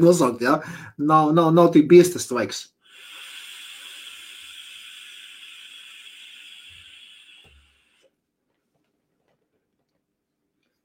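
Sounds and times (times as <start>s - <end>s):
speech: 0.0s - 2.7s
vapor exhaled from an electronic hookah: 2.8s - 8.1s.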